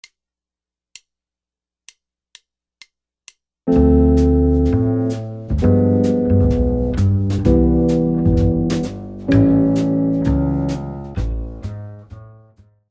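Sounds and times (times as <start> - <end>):
jazz guitar comping: 3.7 - 12.5.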